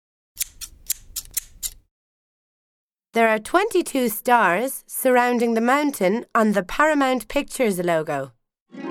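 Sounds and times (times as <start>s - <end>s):
scissors snipping: 0.4s - 1.8s
speech: 3.2s - 8.8s.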